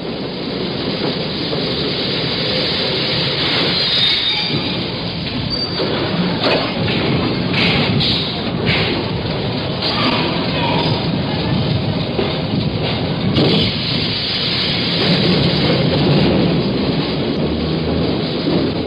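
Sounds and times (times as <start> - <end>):
subway train rumbling: 0.0 - 18.8
subway train wheels clattering: 0.0 - 18.8
metallic squeals of subway train: 3.7 - 4.8.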